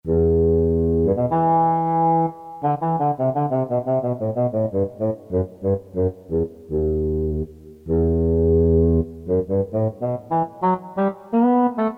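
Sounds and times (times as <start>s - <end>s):
English horn: 0.1s - 11.9s.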